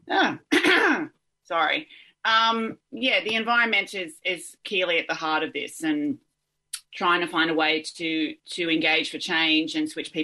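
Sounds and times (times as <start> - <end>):
person clearing a raspy throat: 0.5 - 1.1
speech: 1.5 - 6.2, 6.9 - 10.2.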